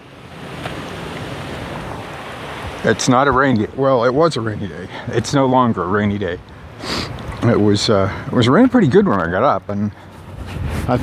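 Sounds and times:
wind blowing outdoors on a windy day: 0:00.0 - 0:11.0
speech: 0:02.8 - 0:10.1, 0:10.9 - 0:11.0.

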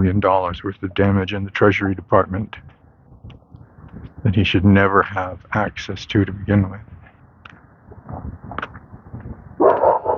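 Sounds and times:
speech: 0:00.0 - 0:03.4, 0:04.2 - 0:06.9, 0:08.1 - 0:08.8
quieter low rumbling noise: 0:00.0 - 0:10.1
dog barking through a small round porthole in a fence on a chilly morning: 0:09.6 - 0:10.1.

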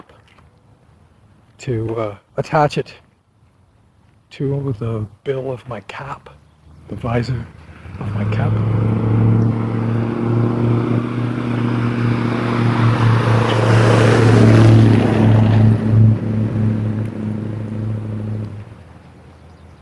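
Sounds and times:
speech: 0:01.6 - 0:03.0, 0:04.3 - 0:08.9
big noisy truck rumbling past with a deep droning engine: 0:07.0 - 0:19.8.

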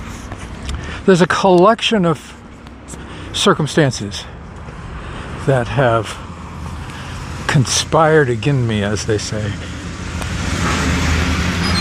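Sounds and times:
speech: 0:01.0 - 0:02.4, 0:03.4 - 0:04.3, 0:05.5 - 0:06.2, 0:07.5 - 0:09.8
truck rumbling along the road with engine and tire noise: 0:06.0 - 0:11.7.

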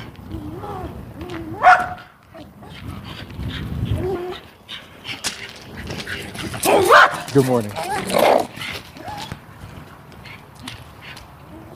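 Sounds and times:
small dogs yapping and whining at an approaching person outdoors: 0:00.3 - 0:09.5
speech: 0:07.4 - 0:08.4.

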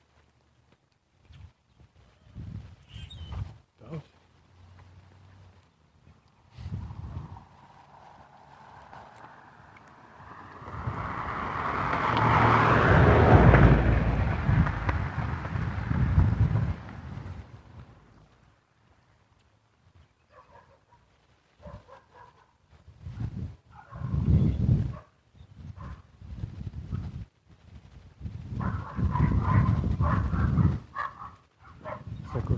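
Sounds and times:
gusty wind rumbling across the microphone: 0:01.3 - 0:03.6, 0:06.5 - 0:18.1, 0:22.7 - 0:32.5
dogs barking outdoors: 0:20.3 - 0:22.6, 0:23.7 - 0:24.2, 0:24.9 - 0:25.2, 0:25.8 - 0:26.0, 0:28.6 - 0:32.5.

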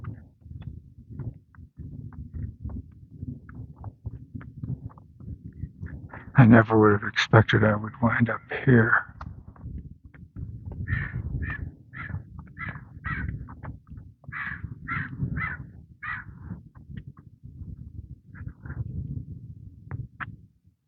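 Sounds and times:
steady low rumble of wind: 0:00.0 - 0:20.8
speech: 0:06.4 - 0:09.1
flock of crows cawing while chasing a hawk: 0:10.9 - 0:13.3, 0:14.3 - 0:16.3.

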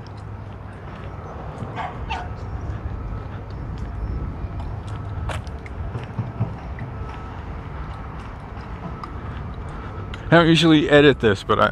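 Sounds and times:
steady low mechanical rumble: 0:00.0 - 0:11.6
dogs barking: 0:01.6 - 0:02.6
speech: 0:10.3 - 0:11.6.

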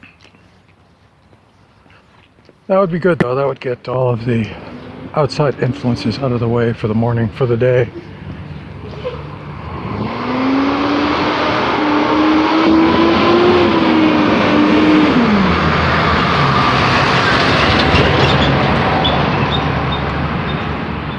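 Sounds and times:
broadband road noise: 0:00.0 - 0:21.1
speech: 0:02.7 - 0:08.1
truck driving by: 0:04.4 - 0:21.1.

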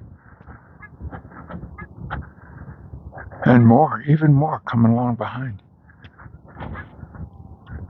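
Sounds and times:
geese honking: 0:00.0 - 0:03.4, 0:05.8 - 0:07.8
speech: 0:03.5 - 0:05.6.

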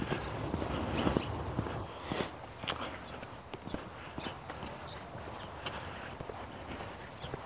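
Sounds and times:
footsteps of a person walking slowly on tired legs: 0:00.0 - 0:07.4.

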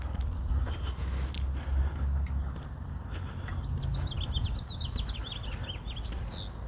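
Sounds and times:
steady low outdoor rumble: 0:00.0 - 0:06.6
faint quick small bird chirps in the distance: 0:02.2 - 0:06.6.

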